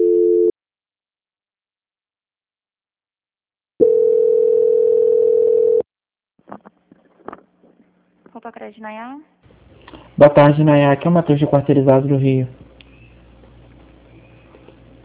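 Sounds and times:
telephone transfer beeps and tones: 0:03.8 - 0:05.8
speech: 0:08.4 - 0:09.4, 0:10.2 - 0:12.6.

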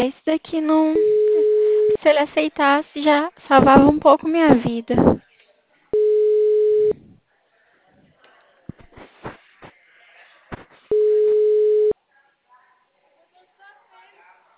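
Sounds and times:
speech: 0:00.0 - 0:05.2
ringback tone of an unanswered phone call: 0:01.0 - 0:02.0, 0:06.0 - 0:07.0, 0:10.9 - 0:12.0.

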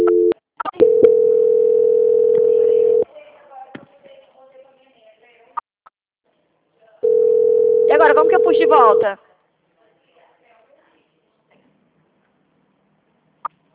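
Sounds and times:
telephone line tone while a dropped call is transferred: 0:00.0 - 0:03.0, 0:07.0 - 0:09.1
speech: 0:08.8 - 0:09.3.

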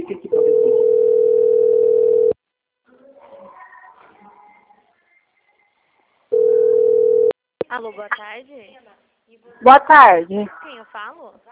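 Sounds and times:
telephone ringing signal on an outgoing call: 0:00.3 - 0:02.4, 0:06.3 - 0:07.3
speech: 0:07.8 - 0:11.5.

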